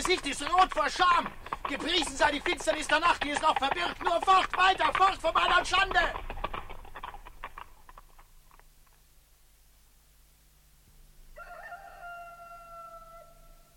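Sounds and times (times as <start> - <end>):
speech: 0.0 - 6.4
steady hiss: 0.0 - 13.7
rooster crowing: 11.3 - 13.7.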